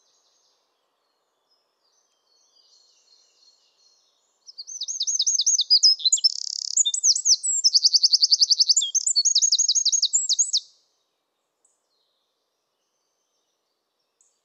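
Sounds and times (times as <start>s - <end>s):
Eurasian wren Troglodytes troglodytes song: 2.2s - 10.8s.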